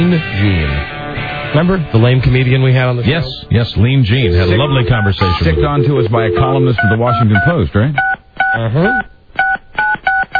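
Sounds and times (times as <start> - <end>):
speech: 0.0 - 9.1
telephone number being dialled with touch tones: 4.1 - 10.3.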